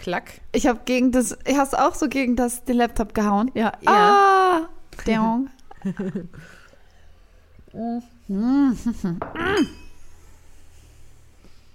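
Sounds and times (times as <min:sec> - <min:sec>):
speech: 0:00.0 - 0:06.6, 0:07.7 - 0:09.8
glasses clinking in a toast: 0:09.2 - 0:10.0.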